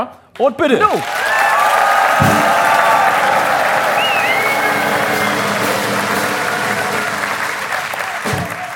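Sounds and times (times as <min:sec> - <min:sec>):
speech: 0:00.0 - 0:01.2
crowd applauding: 0:00.8 - 0:08.7
faint whistles from the crowd: 0:03.9 - 0:05.8.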